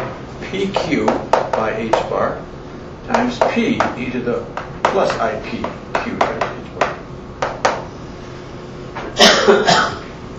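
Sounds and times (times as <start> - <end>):
speech: 0.5 - 6.9, 9.5 - 10.0
person coughing: 9.2 - 10.1.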